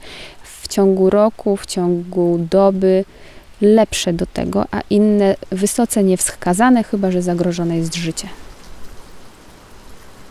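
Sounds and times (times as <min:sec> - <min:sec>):
steady rain falling outdoors at the edge of a village: 0:00.0 - 0:10.2
speech: 0:00.7 - 0:08.4.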